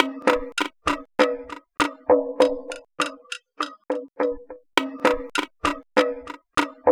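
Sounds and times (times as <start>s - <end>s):
phased pans electronica beat: 0.0s - 2.0s, 4.8s - 6.8s.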